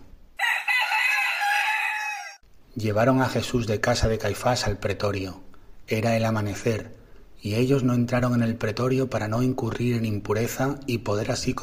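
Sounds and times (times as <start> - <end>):
rooster crowing: 0.4 - 2.4
speech: 2.8 - 11.6.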